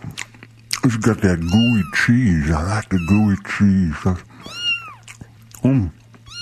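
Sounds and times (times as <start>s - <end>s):
faint steady hum: 0.0s - 6.4s
speech: 0.8s - 4.6s, 5.6s - 6.0s
kitten meowing: 1.2s - 3.6s, 4.4s - 5.1s, 6.2s - 6.4s.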